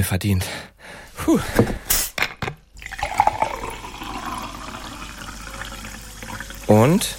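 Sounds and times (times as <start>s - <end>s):
speech: 0.0s - 1.8s, 6.7s - 7.1s
drink pouring into a glass: 2.7s - 7.1s
glass clinking: 2.8s - 6.4s.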